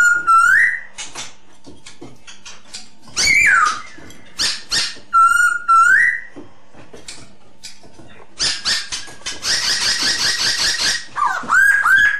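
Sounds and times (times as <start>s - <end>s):
masked laughingthrush lure song: 0.0s - 1.1s, 3.2s - 6.4s, 8.4s - 12.1s.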